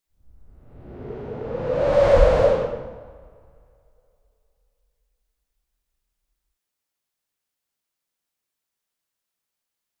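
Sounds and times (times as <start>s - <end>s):
fast whoosh: 0.8s - 3.5s.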